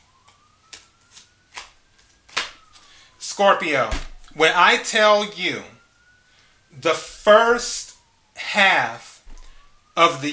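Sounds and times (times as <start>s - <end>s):
tarot cards being shuffled during a reading: 0.3s - 2.8s
faint steady tone: 2.6s - 10.3s
speech: 3.4s - 5.8s, 6.8s - 7.9s, 8.5s - 9.1s, 10.0s - 10.3s.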